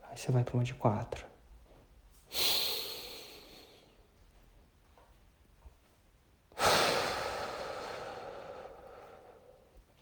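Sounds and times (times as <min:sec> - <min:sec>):
speech: 0:00.2 - 0:01.3
slow paced breathing with three-second inhale and exhale: 0:02.2 - 0:04.1, 0:06.5 - 0:10.0.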